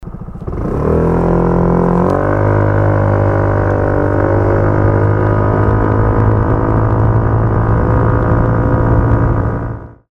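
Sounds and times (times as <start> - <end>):
Cygnus X racing acceleration: 0.0 - 10.1.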